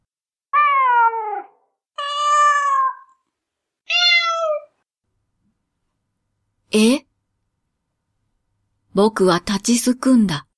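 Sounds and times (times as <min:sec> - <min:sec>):
several cats meowing around a bookshop: 0:00.5 - 0:03.2, 0:03.9 - 0:04.8
speech: 0:06.7 - 0:07.1, 0:09.0 - 0:10.5.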